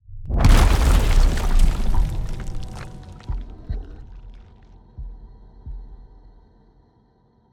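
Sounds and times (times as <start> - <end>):
destruction: 0.3 - 4.5.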